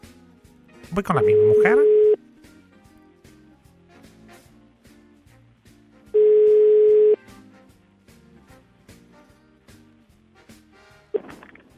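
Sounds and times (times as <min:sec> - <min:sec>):
soft music: 0:00.0 - 0:11.7
speech: 0:00.9 - 0:02.0
telephone tone while placing a call: 0:01.0 - 0:02.2, 0:06.2 - 0:07.2.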